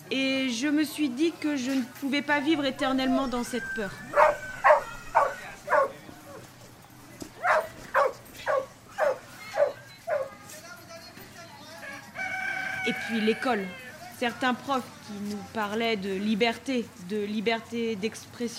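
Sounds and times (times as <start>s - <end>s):
speech: 0.1s - 4.2s, 13.2s - 18.5s
dog barking: 4.0s - 6.0s, 7.4s - 10.3s.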